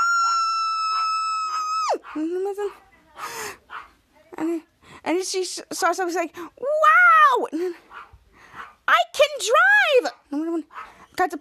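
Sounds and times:
girl screaming: 0.0 - 2.0, 6.6 - 7.5
speech: 1.9 - 3.6, 4.3 - 7.9, 8.9 - 11.4.

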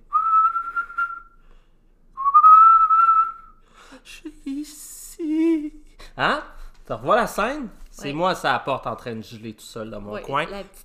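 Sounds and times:
person whistling long steady notes: 0.1 - 1.4, 2.2 - 3.6
speech: 6.2 - 10.8.

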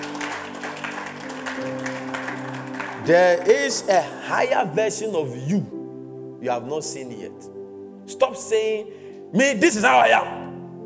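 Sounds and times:
crowd clapping hands: 0.0 - 3.9
speech: 3.1 - 5.8, 6.4 - 7.5, 8.1 - 10.4.

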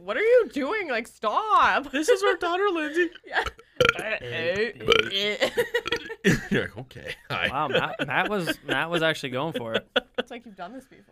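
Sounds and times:
speech: 0.1 - 11.1
long drawn-out voiced rumbling burp: 3.3 - 6.3
laughter: 5.3 - 10.4.

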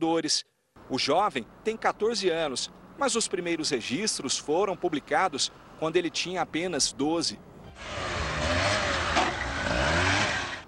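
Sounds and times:
speech: 0.0 - 8.1
motorcycle engine revving: 7.7 - 10.6.

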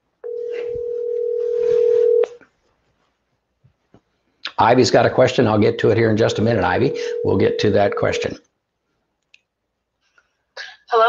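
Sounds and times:
telephone dial tone while connecting call: 0.2 - 2.4, 6.9 - 7.8
faint rustling: 0.2 - 5.4, 6.1 - 11.0
speech: 4.6 - 8.5.

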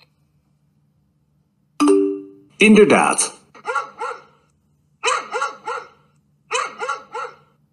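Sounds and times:
faint low hum: 0.0 - 7.7
speech: 2.6 - 3.4
dog barking in sharp woofs: 3.6 - 7.6.

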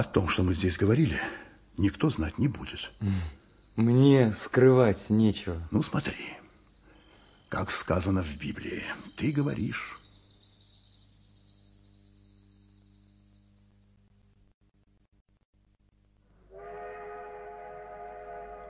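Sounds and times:
speech: 0.0 - 6.4, 7.5 - 10.0
loud sustained train whistle: 16.5 - 18.6.

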